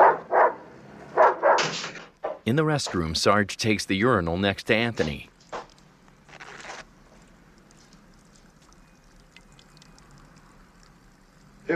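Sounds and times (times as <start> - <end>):
drug-sniffing dog barking outside a building: 0.0 - 1.8
speech: 2.4 - 5.3.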